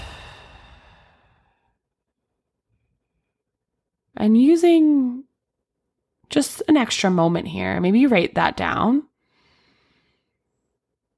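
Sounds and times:
long exhale during a guided breathing exercise: 0:00.0 - 0:01.8, 0:09.2 - 0:10.4
speech: 0:04.2 - 0:05.3, 0:06.3 - 0:09.1.

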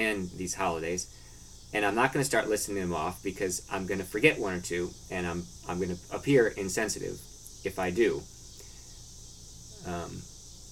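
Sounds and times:
speech: 0:00.0 - 0:08.3, 0:09.8 - 0:10.3
cicadas droning outside: 0:00.0 - 0:10.7.

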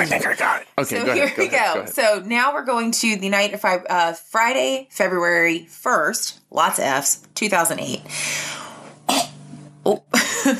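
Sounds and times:
speech: 0:00.0 - 0:10.5
dog hacking and coughing up a hairball: 0:09.1 - 0:09.4.

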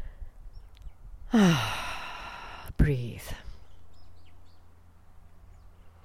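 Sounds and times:
small birds chirping far off: 0:00.0 - 0:01.3, 0:02.9 - 0:06.0
speech: 0:01.3 - 0:01.8.

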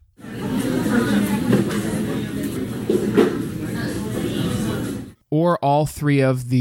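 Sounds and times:
indistinct chatter in a coffee shop: 0:00.2 - 0:05.2
speech: 0:05.4 - 0:06.6.

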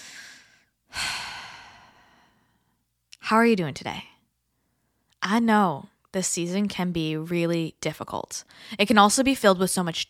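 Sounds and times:
deep breathing: 0:00.0 - 0:02.8
speech: 0:03.3 - 0:04.1, 0:05.2 - 0:10.0.

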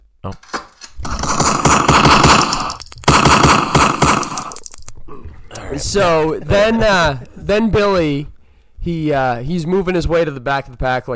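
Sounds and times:
speech: 0:00.2 - 0:00.5, 0:05.9 - 0:11.1
automatic weapon gunfire bursts: 0:01.1 - 0:04.5.

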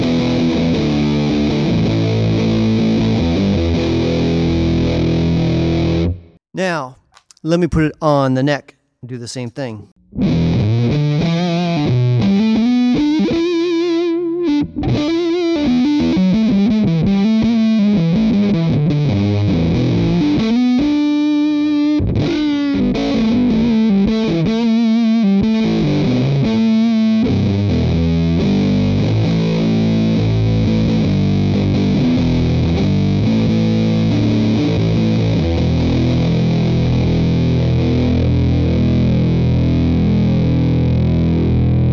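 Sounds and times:
distorted electric guitar playing chords and riffs: 0:00.0 - 0:06.4, 0:10.0 - 0:41.9
speech: 0:06.6 - 0:10.3.

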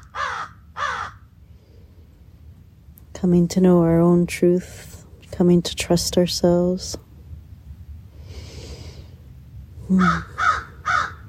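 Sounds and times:
crow cawing in the morning: 0:00.0 - 0:01.2, 0:10.0 - 0:11.2
soft hiss: 0:01.3 - 0:10.4
speech: 0:03.2 - 0:07.0, 0:09.9 - 0:10.4.

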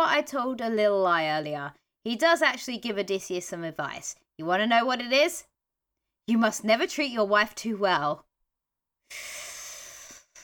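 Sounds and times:
speech: 0:00.2 - 0:05.5, 0:06.3 - 0:08.3, 0:09.1 - 0:09.4
heavy angry exhale through the nose: 0:09.1 - 0:10.4.

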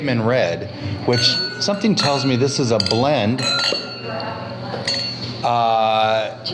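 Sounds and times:
speech: 0:00.0 - 0:04.3, 0:05.4 - 0:06.5
low hum: 0:00.0 - 0:06.5
wine glasses clinking in a toast: 0:01.1 - 0:05.4.

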